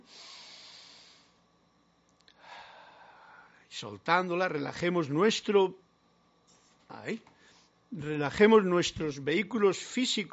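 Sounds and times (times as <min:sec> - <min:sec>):
deep breath in and out: 0:00.0 - 0:01.5, 0:02.3 - 0:03.6
speech: 0:03.8 - 0:05.8, 0:07.0 - 0:07.3, 0:07.9 - 0:10.3.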